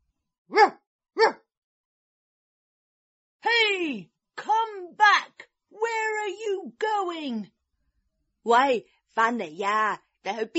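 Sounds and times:
dog barking: 0:00.5 - 0:01.5
speech: 0:03.5 - 0:07.6, 0:08.4 - 0:10.5.

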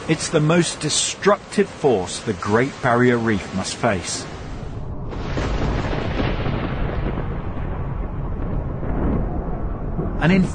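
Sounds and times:
howling wind in a cyclone storm: 0:00.0 - 0:10.5
speech: 0:00.1 - 0:04.4, 0:10.2 - 0:10.5
deep rumbling thunder in a cyclone storm: 0:04.5 - 0:10.5.

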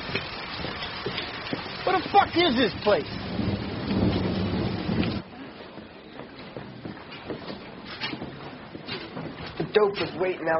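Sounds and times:
heavy rain pouring outside: 0:00.0 - 0:10.5
rain drips and patters: 0:00.0 - 0:10.5
speech: 0:02.1 - 0:03.2, 0:09.8 - 0:10.5
low rumble: 0:03.0 - 0:05.8.

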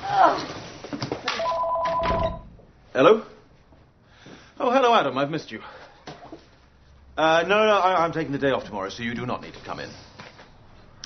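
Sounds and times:
telephone ringing with a steady electronic tone: 0:01.4 - 0:02.4
speech: 0:03.0 - 0:03.3, 0:05.0 - 0:05.8, 0:07.2 - 0:10.1.

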